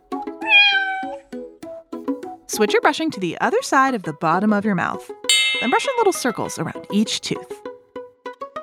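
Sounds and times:
cat meowing and chirping: 0:00.4 - 0:01.2
speech: 0:02.5 - 0:07.6.

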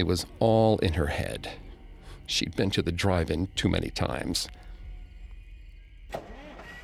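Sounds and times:
speech: 0:00.0 - 0:01.6, 0:02.3 - 0:04.6
car engine starting and revving while pulling away: 0:06.1 - 0:06.8.

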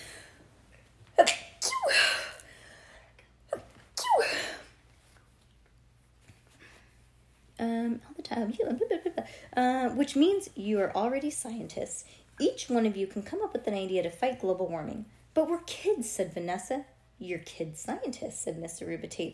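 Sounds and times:
person sneezing: 0:01.2 - 0:02.5, 0:03.5 - 0:04.8
speech: 0:07.6 - 0:19.3.

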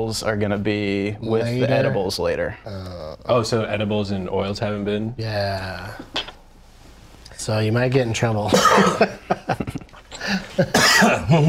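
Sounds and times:
speech: 0:00.0 - 0:06.1, 0:07.4 - 0:09.4, 0:10.6 - 0:11.4
person coughing with something caught in the throat after inhaling a cannabis dab: 0:08.5 - 0:09.2, 0:10.6 - 0:11.4
laughter: 0:08.6 - 0:11.4.

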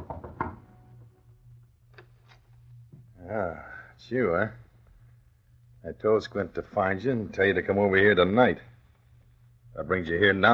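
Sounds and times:
knocking on an apartment door: 0:00.0 - 0:00.7
steady low hum: 0:00.0 - 0:10.5
speech: 0:03.3 - 0:04.6, 0:05.8 - 0:08.7, 0:09.8 - 0:10.5.

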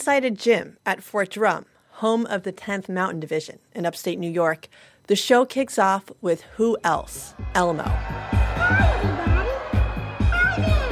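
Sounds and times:
speech: 0:00.0 - 0:09.2
steady thumping dance beat in a gym: 0:07.3 - 0:10.9
crowd of three-year-olds shrieking and shouting in a gym: 0:08.4 - 0:10.9.

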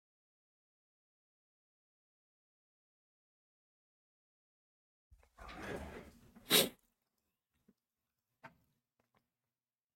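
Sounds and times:
faint sniffs: 0:06.4 - 0:06.8
single loud sneeze with breathy inhale: 0:06.4 - 0:06.8.

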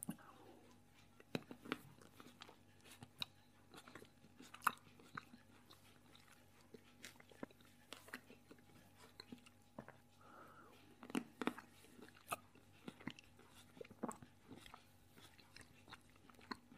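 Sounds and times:
faint steady hum: 0:00.0 - 0:16.7
person eating: 0:00.0 - 0:16.7
sharp crunches and wet chewing clicks: 0:00.0 - 0:16.7.

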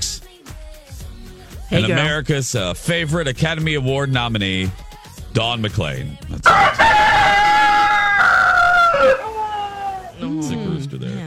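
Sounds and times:
speech: 0:01.7 - 0:07.2
person imitating a sick rooster's crow in a hoarse voice: 0:06.4 - 0:10.2.

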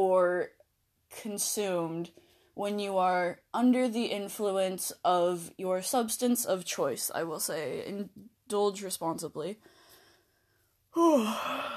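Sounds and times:
speech: 0:00.0 - 0:09.8, 0:10.9 - 0:11.7
person yawning: 0:11.0 - 0:11.7.

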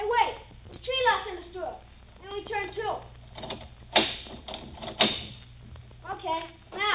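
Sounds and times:
people talking: 0:00.0 - 0:03.1, 0:06.0 - 0:06.9
door locks turned with sharp metallic clunks: 0:03.4 - 0:05.4.

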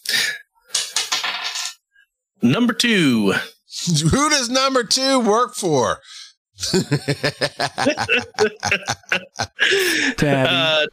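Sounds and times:
dice clattering across a hard tabletop: 0:00.7 - 0:01.8
speech: 0:02.4 - 0:10.9
laughter: 0:06.6 - 0:10.9.

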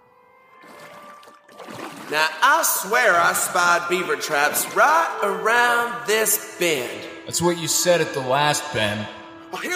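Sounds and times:
river water trickling and burbling: 0:00.6 - 0:04.9
speech: 0:02.1 - 0:09.7.

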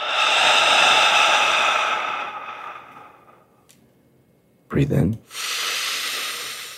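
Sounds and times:
forceful lion's breath exhale through an open mouth in a breathing exercise: 0:00.0 - 0:03.5, 0:05.3 - 0:06.7
speech: 0:04.8 - 0:05.4.

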